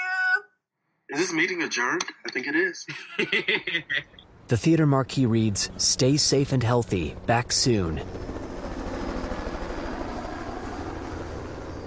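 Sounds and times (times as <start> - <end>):
speech: 1.1 - 8.4
laughter: 2.9 - 4.2
helicopter flying overhead: 4.3 - 11.8.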